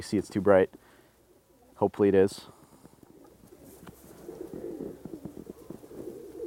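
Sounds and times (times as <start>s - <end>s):
speech: 0.0s - 0.9s, 1.8s - 2.6s
flock of pigeons cooing: 2.5s - 6.4s.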